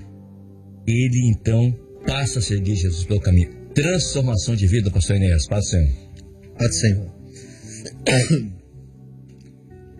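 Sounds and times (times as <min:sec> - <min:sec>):
speech: 0:00.9 - 0:06.0, 0:06.6 - 0:08.6
single raspy throat-clearing cough: 0:07.7 - 0:08.6.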